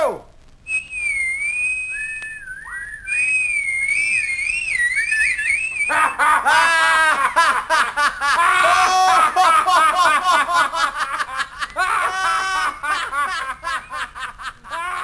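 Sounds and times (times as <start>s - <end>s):
person whistling a clear wavering tune: 0.7s - 6.2s
loud excited voices: 5.9s - 7.4s, 8.2s - 10.8s, 11.5s - 13.2s
laughter: 5.9s - 15.0s.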